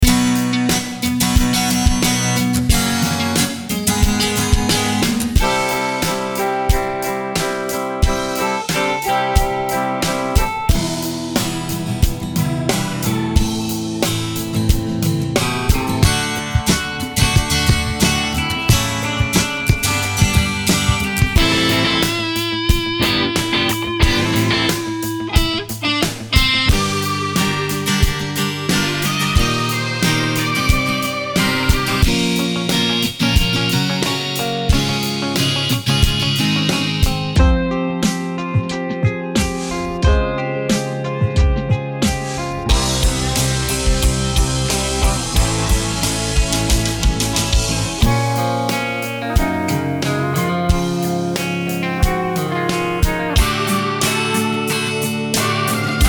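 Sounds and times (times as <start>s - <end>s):
acoustic rock music: 0.0s - 56.0s.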